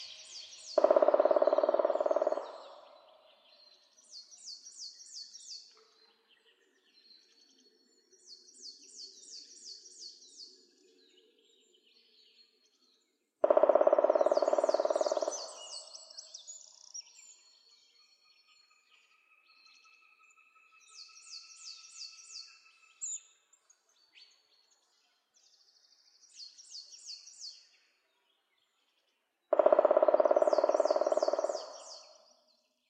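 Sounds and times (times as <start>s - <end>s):
black woodpecker song and other sounds in Meijendel: 0.0s - 3.2s, 13.4s - 16.3s, 29.5s - 32.4s.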